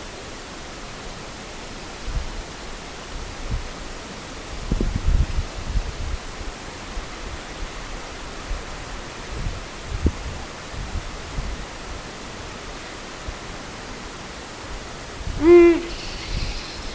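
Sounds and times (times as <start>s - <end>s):
steady background hiss: 0.0s - 16.9s
Ural owl deep hoot: 15.4s - 16.9s.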